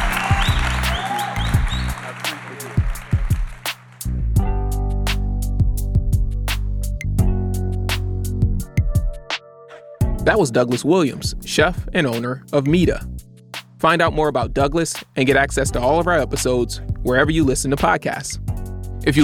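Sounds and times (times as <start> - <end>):
audience applause: 0.0 - 4.1
music with steady rhythmic beat and deep bass: 0.0 - 9.3, 10.0 - 10.4, 11.2 - 19.2
speech: 10.3 - 13.1, 13.8 - 19.2.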